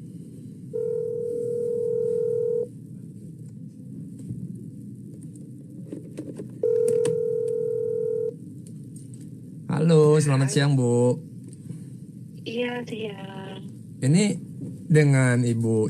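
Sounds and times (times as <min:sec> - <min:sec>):
electronic phone ringback tone through the line: 0:00.7 - 0:02.7, 0:06.6 - 0:08.3
speech: 0:10.2 - 0:11.3, 0:12.6 - 0:13.4, 0:14.0 - 0:15.8.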